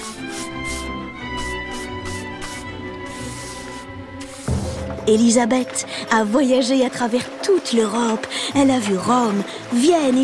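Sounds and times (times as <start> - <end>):
paintbrush moving across canvas: 0.0 - 4.9
speech: 5.0 - 10.2.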